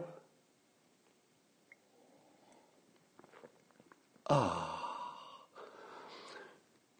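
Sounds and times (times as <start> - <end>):
soft slurping of coffee: 1.7 - 4.2
breathy satisfied sigh: 4.3 - 6.6.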